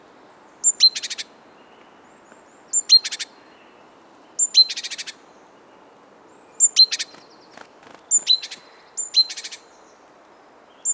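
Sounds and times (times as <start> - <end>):
great tit (Parus major) calls with buzzy churring: 0.6 - 1.3, 2.4 - 3.6, 4.4 - 5.2, 6.6 - 9.7.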